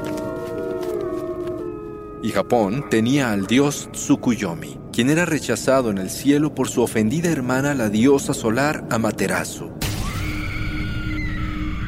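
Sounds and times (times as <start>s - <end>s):
wolves howling in chorus: 0.0s - 5.0s, 10.2s - 11.8s
speech: 2.2s - 9.8s.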